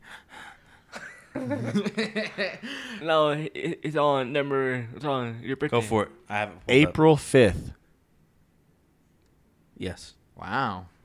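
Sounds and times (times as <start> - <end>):
laughter: 0.9 - 3.0
speech: 1.4 - 7.8, 9.8 - 11.0
boy gasping: 2.6 - 3.0.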